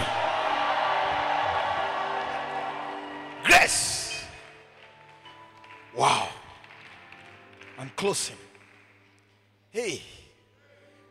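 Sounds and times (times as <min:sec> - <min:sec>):
large crowd screaming and cheering: 0:00.0 - 0:05.0
speech: 0:03.7 - 0:03.9, 0:08.0 - 0:08.5.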